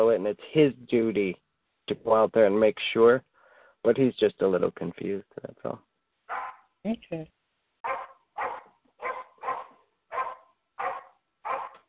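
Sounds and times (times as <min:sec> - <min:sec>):
speech: 0:00.0 - 0:07.4
dog barking: 0:06.3 - 0:06.7, 0:07.8 - 0:11.8.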